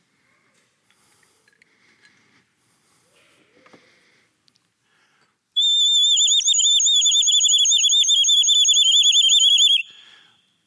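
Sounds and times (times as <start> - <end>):
whistle blown while held in water: 5.6 - 9.9.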